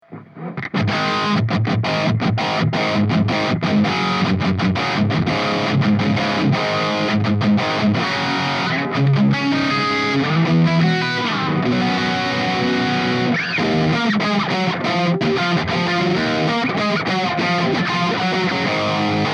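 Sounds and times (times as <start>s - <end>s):
plexi guitar amplifier tone: 0.0s - 19.3s.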